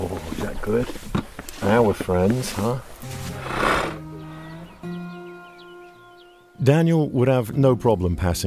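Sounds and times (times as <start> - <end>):
speech: 0.0 - 2.9, 6.6 - 8.4
horse snorting: 3.0 - 4.6
horse giving a low rumbling whinny: 3.2 - 4.1.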